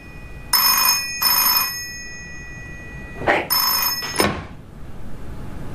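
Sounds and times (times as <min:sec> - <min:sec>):
office telephone ringing: 0:00.0 - 0:04.5.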